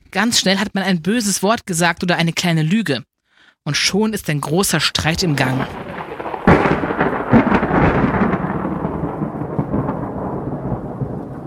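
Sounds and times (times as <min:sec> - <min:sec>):
speech: 0:00.1 - 0:05.9
loud thunderclap: 0:05.1 - 0:11.4
rain hissing: 0:05.2 - 0:08.7.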